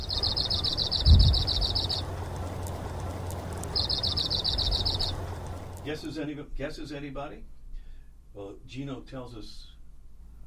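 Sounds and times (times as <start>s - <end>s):
Arctic warbler song with dry trills: 0.0s - 6.1s
steady background hum: 0.0s - 10.4s
speech: 5.9s - 7.6s, 8.4s - 9.7s.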